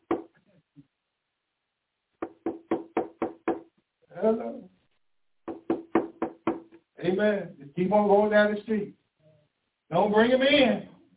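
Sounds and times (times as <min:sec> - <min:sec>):
firm knocking on a door: 0:00.0 - 0:00.3, 0:02.2 - 0:03.7, 0:05.4 - 0:06.8
speech: 0:04.2 - 0:04.7, 0:07.0 - 0:09.0, 0:09.9 - 0:10.9.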